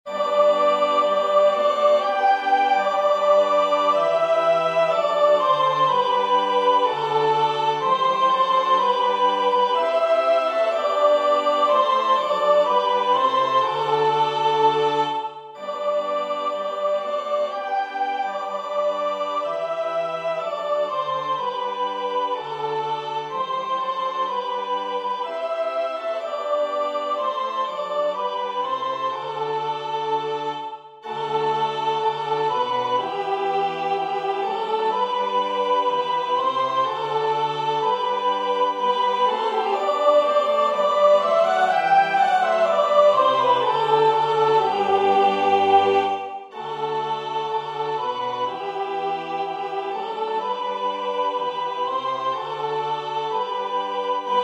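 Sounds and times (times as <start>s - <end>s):
sopranos singing a sacred choral piece: 0.0s - 54.4s.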